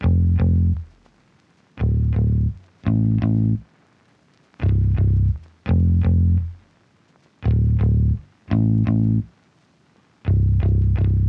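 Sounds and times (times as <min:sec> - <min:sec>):
bass stem in A minor: 0:00.0 - 0:01.1, 0:01.8 - 0:03.7, 0:04.6 - 0:06.6, 0:07.4 - 0:09.3, 0:10.3 - 0:11.2.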